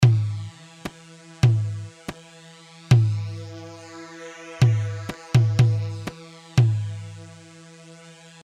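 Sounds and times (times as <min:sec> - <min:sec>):
tabl drum: 0:00.0 - 0:00.4, 0:01.4 - 0:01.9, 0:02.9 - 0:03.3, 0:04.6 - 0:07.0.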